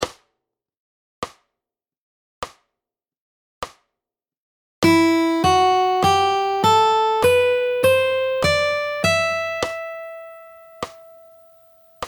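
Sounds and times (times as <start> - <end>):
fingerstyle ascending scale: 4.8 - 11.6.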